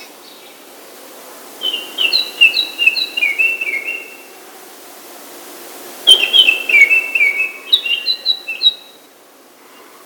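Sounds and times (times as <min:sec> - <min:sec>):
Baltimore Oriole song: 0:01.6 - 0:04.2, 0:06.1 - 0:09.0.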